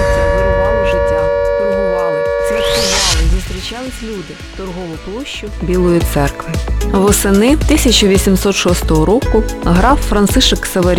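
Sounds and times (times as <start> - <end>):
air raid alert siren in a Ukrainian city: 0.0 - 4.6
speech: 3.9 - 10.9.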